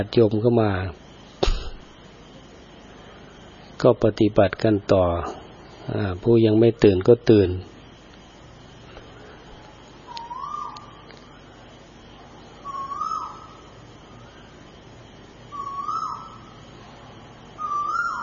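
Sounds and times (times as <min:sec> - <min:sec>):
speech: 0:00.0 - 0:01.0, 0:03.8 - 0:07.7
faint hiss: 0:00.0 - 0:18.2
bird calling at a Buddhist temple: 0:10.0 - 0:11.6, 0:12.4 - 0:14.7, 0:15.4 - 0:18.2.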